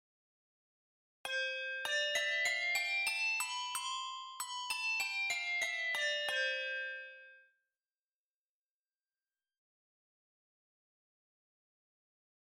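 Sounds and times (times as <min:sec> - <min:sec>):
handbells: 0:01.3 - 0:07.4.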